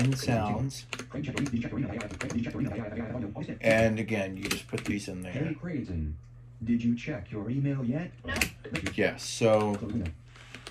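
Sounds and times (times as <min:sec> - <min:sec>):
computer keyboard typing on a Mac Mini setup: 0:00.0 - 0:05.2, 0:08.3 - 0:10.6
speech: 0:00.1 - 0:10.2.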